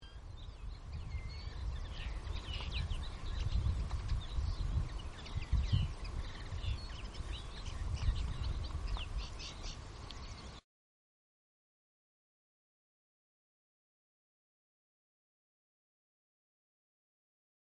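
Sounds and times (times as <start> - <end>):
Carduelis cannabina linnet calling: 1.1 - 10.6.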